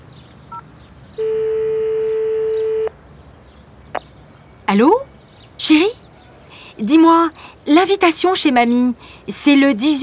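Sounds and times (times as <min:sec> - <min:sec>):
mobile phone electronic beep: 0:01.2 - 0:02.9
speech: 0:04.7 - 0:06.0, 0:06.8 - 0:10.0.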